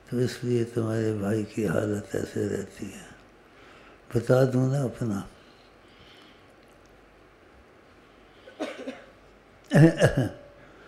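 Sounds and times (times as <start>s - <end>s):
speech: 0.1s - 3.1s, 4.1s - 5.4s, 9.8s - 10.4s
person coughing: 8.5s - 10.5s.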